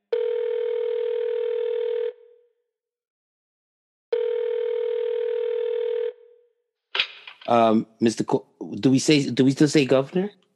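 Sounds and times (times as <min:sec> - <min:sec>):
telephone dial tone: 0:00.0 - 0:02.2, 0:04.1 - 0:06.2
speech: 0:07.5 - 0:10.5.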